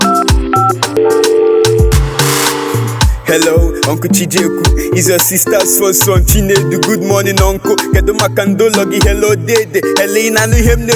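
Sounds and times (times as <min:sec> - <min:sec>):
borrowed phone keypad beeps dialing a number: 0:00.0 - 0:02.0
speech: 0:03.3 - 0:10.9.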